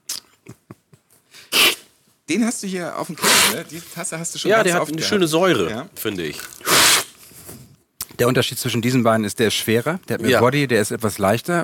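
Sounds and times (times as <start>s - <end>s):
nasal sniffs: 1.3s - 1.9s, 3.2s - 3.6s, 6.6s - 7.6s
loud long snort-like nasal blast: 1.5s - 1.8s, 6.6s - 7.1s
speech: 2.3s - 6.6s, 8.2s - 11.6s.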